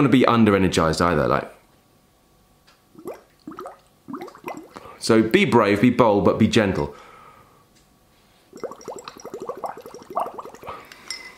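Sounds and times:
speech: 0.0s - 1.6s, 5.0s - 7.0s
steady stream of bubbles blown through water: 3.0s - 4.8s, 8.6s - 10.8s.

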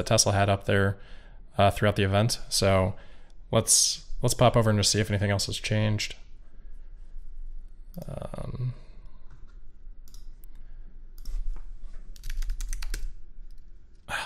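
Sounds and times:
speech: 0.0s - 6.2s, 8.0s - 8.8s
low hum: 0.0s - 14.2s
typing on a computer keyboard: 12.2s - 13.2s.

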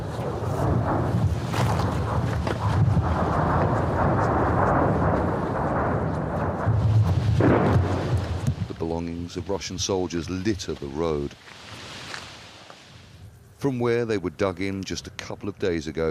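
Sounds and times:
artillery shells and rockets exploding along a war front in eastern Ukraine: 0.0s - 12.2s
speech: 9.3s - 11.6s, 13.6s - 16.0s.

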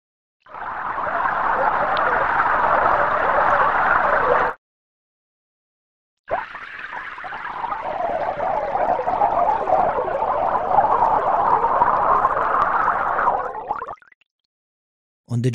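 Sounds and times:
computer-simulated bubbling water: 0.5s - 4.6s, 6.3s - 14.2s.

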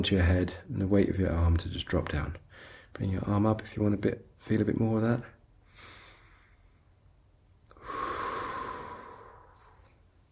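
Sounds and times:
speech: 0.0s - 5.9s
slow deep breathing: 2.5s - 3.0s, 5.6s - 7.0s, 7.7s - 10.2s.

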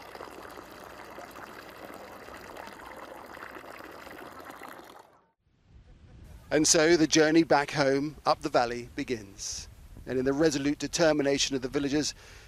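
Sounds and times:
water gushing from a communal tap: 0.0s - 5.1s
speech: 6.5s - 12.4s.

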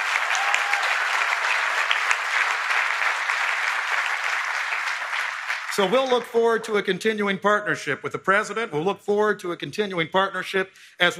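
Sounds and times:
applause from a sizable audience: 0.0s - 6.4s
speech: 5.8s - 11.1s.

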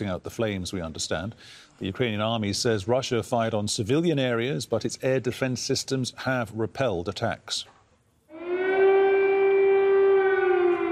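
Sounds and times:
speech: 0.0s - 7.8s
air raid siren wailing: 8.3s - 10.9s.

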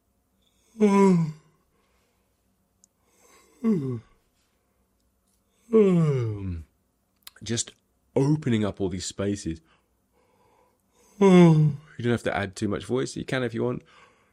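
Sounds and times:
drawn-out voiced yawns: 0.6s - 1.6s, 3.3s - 4.2s, 5.6s - 6.7s, 11.1s - 11.9s
speech: 0.8s - 1.2s, 3.6s - 4.1s, 5.8s - 6.2s, 7.5s - 9.8s, 11.2s - 14.0s.

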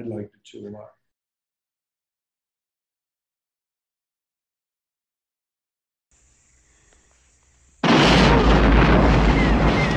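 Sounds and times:
speech: 0.0s - 1.0s
crackling debris: 7.8s - 9.9s
massive explosion in a film action scene: 7.8s - 9.9s
sustained roaring rumble with heavy low-end boom: 7.8s - 9.9s.

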